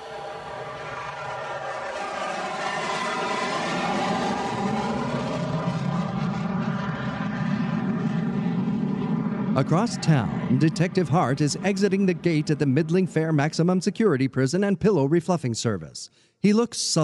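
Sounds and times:
craft engine roaring during takeoff: 0.0 - 14.6
speech: 9.6 - 17.0.

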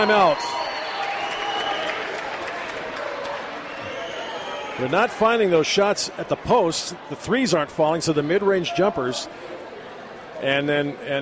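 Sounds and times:
speech: 0.0 - 0.7, 4.8 - 9.6, 10.4 - 11.2
large home crowd at a basketball game cheering and clapping: 0.0 - 5.6.

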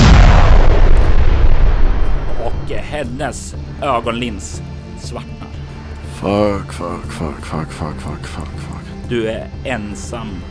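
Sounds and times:
explosion with heavy low-end boom and rumbling roar: 0.0 - 2.8
speech: 3.0 - 5.4, 6.2 - 10.4.

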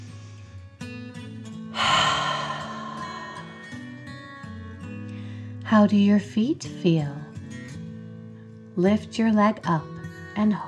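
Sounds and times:
deep breath in and slow exhale: 1.7 - 4.2, 5.1 - 5.6
speech: 5.7 - 7.3, 8.8 - 10.6.

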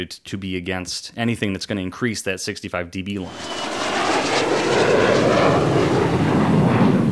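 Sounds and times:
speech: 0.0 - 6.3
jet aircraft roaring overhead: 3.2 - 7.1.

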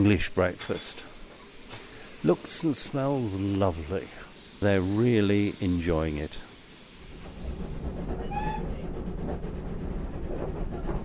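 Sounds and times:
speech: 0.0 - 1.1, 2.2 - 6.5
locomotive hauling a passenger train uphill: 7.0 - 11.0.

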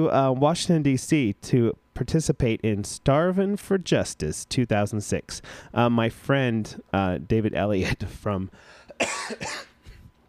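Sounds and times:
speech: 0.0 - 9.7
person coughing harshly: 8.9 - 10.0.

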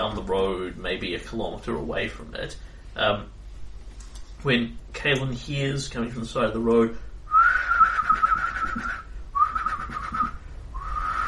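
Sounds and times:
speech: 0.2 - 3.4, 4.4 - 7.1
person whistling bird-like notes from the bushes beside a road: 7.3 - 11.2.

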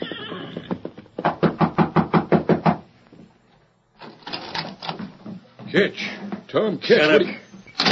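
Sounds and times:
knocking on the rear door of a cafe: 1.2 - 2.9
speech: 5.7 - 7.4.

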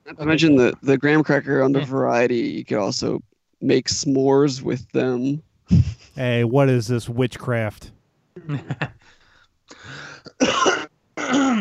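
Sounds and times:
speech: 0.1 - 9.2, 11.3 - 11.5
person clearing throat: 10.3 - 11.5.

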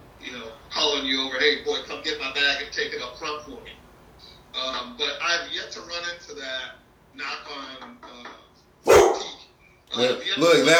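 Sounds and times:
speech: 0.9 - 3.7, 4.6 - 8.4, 10.0 - 10.7
dog barking: 8.9 - 9.4.

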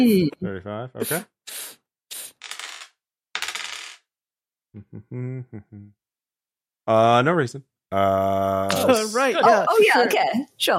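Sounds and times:
speech: 0.0 - 1.4, 4.7 - 6.0, 6.9 - 10.7
dice being shaken and rolled on a surface: 2.2 - 4.1.

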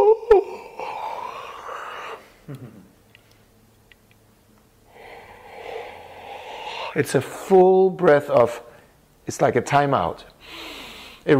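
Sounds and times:
person letting out a deep exaggerated yawn: 0.0 - 2.9, 4.9 - 7.0
person letting out an airy exhale: 0.3 - 2.9, 4.9 - 7.5
speech: 7.0 - 8.7, 9.3 - 11.3.

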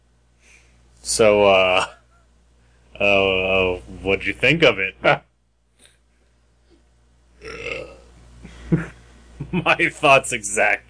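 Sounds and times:
speech: 1.1 - 2.0, 3.0 - 5.3, 9.5 - 10.8
short burp with a small pop: 7.4 - 8.0
drawn-out rumbling belch: 7.4 - 8.1.

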